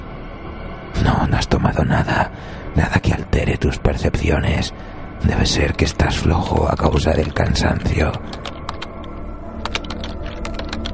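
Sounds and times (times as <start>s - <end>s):
speech: 1.0s - 8.5s
fingers typing on a computer keyboard: 6.4s - 10.9s.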